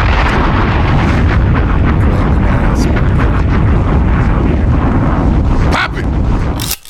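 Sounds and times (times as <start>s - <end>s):
bomb explosions: 0.0s - 6.6s.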